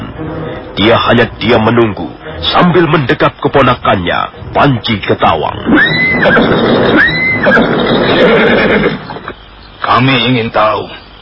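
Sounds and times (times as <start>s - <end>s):
rough noise: 0.0s - 11.1s
speech: 0.8s - 9.1s, 9.8s - 11.0s
horse neighing on a road at night while being ridden: 5.5s - 9.3s.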